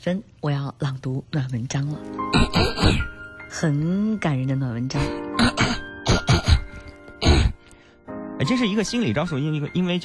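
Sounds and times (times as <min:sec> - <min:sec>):
speech: 0:00.0 - 0:05.8, 0:08.4 - 0:10.0
person clearing throat: 0:02.3 - 0:03.1, 0:05.4 - 0:07.6.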